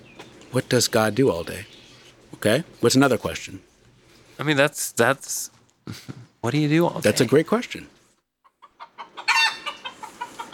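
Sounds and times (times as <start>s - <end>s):
speech: 0.5s - 1.8s, 2.4s - 3.7s, 4.4s - 8.0s
laughter: 5.9s - 6.3s
chicken clucking: 8.4s - 10.5s.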